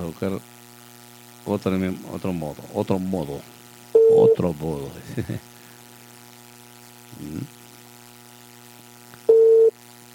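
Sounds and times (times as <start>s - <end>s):
speech: 0.0s - 0.6s, 1.4s - 5.4s
faint constant hum: 0.0s - 10.1s
telephone busy-signal tone: 4.0s - 4.4s, 9.3s - 9.8s.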